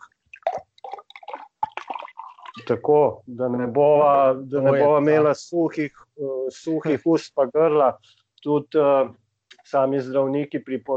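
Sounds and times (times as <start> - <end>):
homemade wine glugging from a bottle into a glass: 0.4 - 2.8
speech: 2.6 - 10.9.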